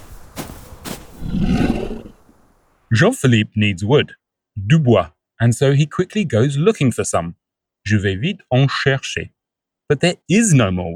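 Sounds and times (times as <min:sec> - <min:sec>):
bear roaring: 0:01.2 - 0:02.2
speech: 0:02.9 - 0:10.9.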